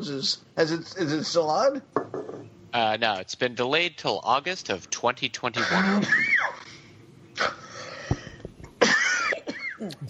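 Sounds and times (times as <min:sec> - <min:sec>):
speech: 0:00.0 - 0:06.4
person coughing: 0:05.6 - 0:06.2, 0:08.8 - 0:09.8
breathy noise: 0:06.6 - 0:08.6.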